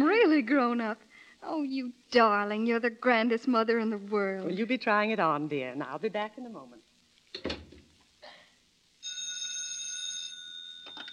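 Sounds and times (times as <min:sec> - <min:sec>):
speech: 0:00.5 - 0:07.6
telephone ringing: 0:09.0 - 0:11.1.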